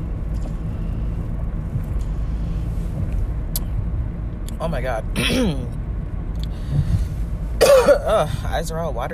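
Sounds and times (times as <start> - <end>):
engine and road rumble inside a moving car driven to work: 0.0 - 9.1
speech: 4.6 - 5.8, 7.8 - 9.1.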